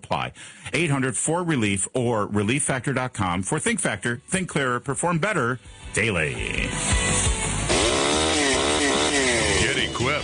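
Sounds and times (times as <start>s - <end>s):
speech: 0.1s - 7.0s
worn-out two-stroke leaf blower engine revving: 6.8s - 10.2s.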